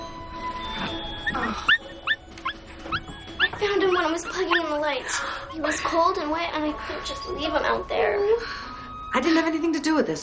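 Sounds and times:
white puppy with brown ears yipping while playing on a bed: 0.4 - 5.8
speech: 1.3 - 1.8, 4.1 - 10.2.

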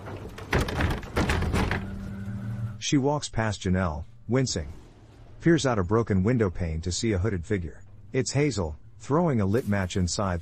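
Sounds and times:
door handle rattling: 0.0 - 1.9
door swinging open with dull clunks and a low creak: 0.0 - 2.7
speech: 2.8 - 4.8, 5.4 - 10.4.

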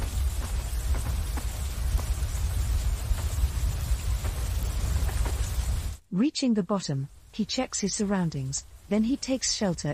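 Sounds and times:
low rumbling wash: 0.0 - 6.0
steady rain pouring down: 0.0 - 9.9
speech: 6.2 - 9.9.

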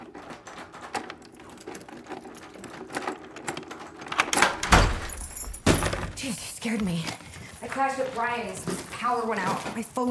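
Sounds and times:
door knob rattling with quick clicks: 0.0 - 6.2
front door swinging open: 4.1 - 6.2
speech: 6.2 - 7.2, 7.8 - 10.0.

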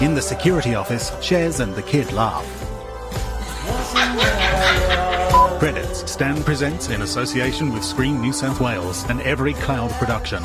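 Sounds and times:
speech: 0.1 - 2.6, 5.6 - 10.4
laughter: 3.4 - 5.8
several puppies yipping and barking: 3.8 - 5.5.

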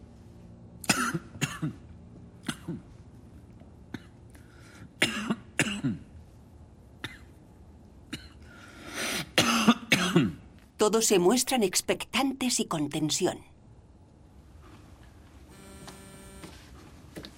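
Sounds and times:
man coughing: 0.8 - 1.8, 5.0 - 6.1, 9.3 - 10.4
speech: 1.1 - 1.8, 10.8 - 13.6.

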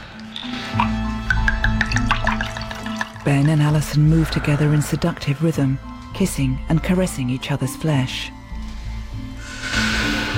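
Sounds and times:
drink pouring from a bottle: 0.0 - 3.3
speech: 3.3 - 8.4.

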